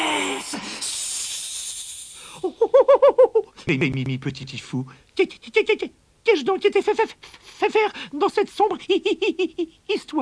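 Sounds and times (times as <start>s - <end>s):
snakes hissing: 0.0s - 2.5s
speech: 3.7s - 10.1s.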